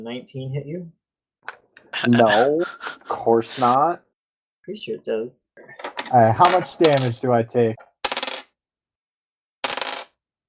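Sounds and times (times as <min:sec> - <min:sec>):
speech: 0:00.0 - 0:01.0, 0:01.9 - 0:04.0, 0:04.7 - 0:07.9
laughter: 0:01.9 - 0:03.8, 0:06.2 - 0:07.2
dice rolling on a table: 0:05.8 - 0:07.2, 0:07.8 - 0:08.5, 0:09.6 - 0:10.2.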